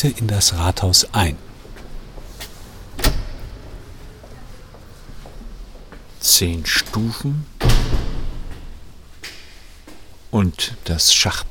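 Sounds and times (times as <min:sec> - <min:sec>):
speech: 0:00.0 - 0:01.5, 0:06.4 - 0:08.0, 0:10.3 - 0:11.5
heavy door pushed open: 0:02.8 - 0:04.0, 0:07.6 - 0:08.8
clunk of the latch and wood: 0:03.0 - 0:03.6.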